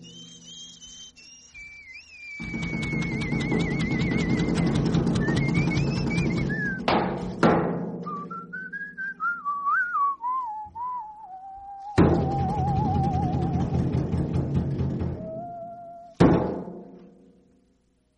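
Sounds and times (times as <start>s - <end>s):
whistled melody: 0.0s - 7.0s, 8.0s - 14.1s, 14.9s - 16.2s
sharp percussive hits: 2.4s - 8.1s, 12.0s - 15.4s, 16.2s - 17.4s
busy musical backing: 2.4s - 17.1s.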